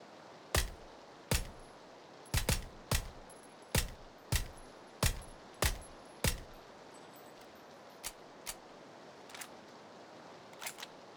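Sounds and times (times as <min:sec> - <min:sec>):
VSS suppressed rifle single shot in rain: 0:00.6 - 0:01.6, 0:02.4 - 0:03.2, 0:03.8 - 0:06.6.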